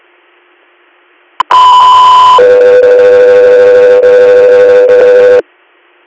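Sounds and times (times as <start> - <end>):
loud two-tone radio paging alert tone: 1.4 - 5.4.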